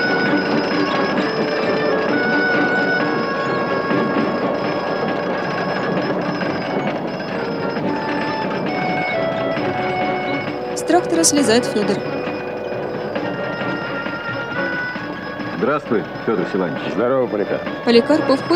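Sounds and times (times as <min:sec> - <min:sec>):
winch hauling a machine tool along rails into a workshop: 0:00.0 - 0:18.5
speech: 0:10.9 - 0:12.2, 0:15.6 - 0:18.5.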